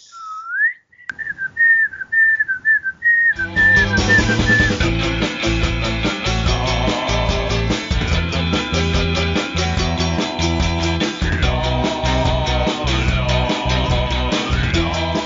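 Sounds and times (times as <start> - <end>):
person whistling a tune: 0.0 - 5.0, 11.0 - 11.6, 14.3 - 14.9
backing music: 3.4 - 15.2.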